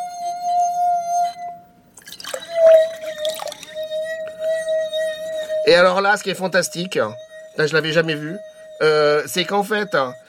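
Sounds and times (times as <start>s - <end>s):
water-filled glass ringing tone dipped into a bucket of water: 0.0s - 10.2s
water splashes and drips in a bucket: 2.0s - 3.8s
speech: 5.7s - 10.2s.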